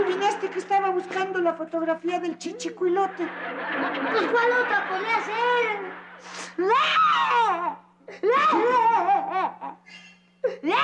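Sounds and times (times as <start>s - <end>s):
laughter: 0.0s - 1.4s, 2.9s - 6.3s, 8.1s - 9.8s
faint steady hum: 0.0s - 10.8s
speech: 0.1s - 10.8s
young girl crying and sobbing: 6.5s - 10.8s.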